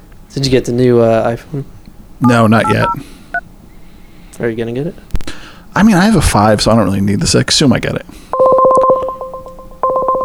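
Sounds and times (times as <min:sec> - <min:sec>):
speech: 0:00.3 - 0:03.1, 0:04.4 - 0:05.1, 0:05.8 - 0:08.5
outgoing call ringing tone on a tablet: 0:02.2 - 0:03.1, 0:08.4 - 0:10.2.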